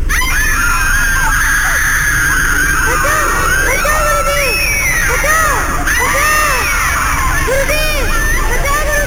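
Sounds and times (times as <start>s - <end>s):
crowd of disciples screaming from burns while fleeing: 0.0s - 8.9s.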